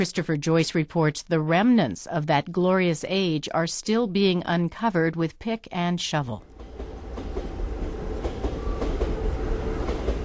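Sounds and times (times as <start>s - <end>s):
speech: 0.0s - 6.5s
commuter train rumbling past: 6.4s - 10.2s
train wheels clacking over rail joints: 6.5s - 10.2s.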